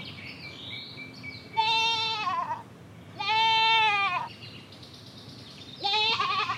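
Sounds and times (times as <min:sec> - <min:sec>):
goat bleating: 0:01.6 - 0:04.3, 0:05.8 - 0:06.5.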